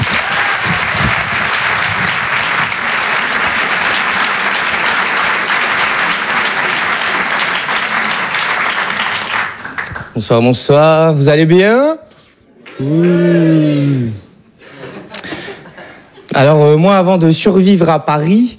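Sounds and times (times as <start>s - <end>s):
comedy club audience applauding: 0.0s - 10.2s
speech: 10.2s - 12.0s, 12.8s - 14.2s, 16.4s - 18.5s.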